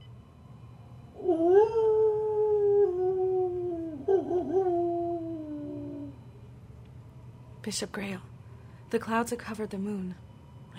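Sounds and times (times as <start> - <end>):
wolf howling: 1.2 - 6.2
speech: 7.6 - 8.3, 8.9 - 10.2.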